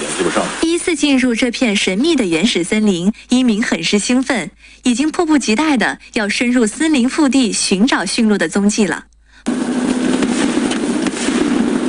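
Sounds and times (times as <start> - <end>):
speech: 0.2 - 9.8
firecrackers exploding in a remote primeval forest: 9.5 - 11.8.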